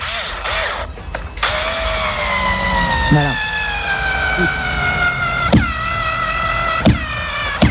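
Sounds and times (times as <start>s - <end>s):
electric screwdriver driving a screw: 0.0s - 7.7s
speech: 3.1s - 3.4s, 4.4s - 4.6s.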